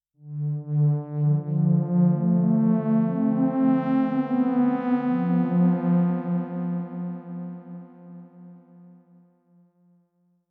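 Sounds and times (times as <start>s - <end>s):
Xpander synthesizer: 0.3s - 9.2s.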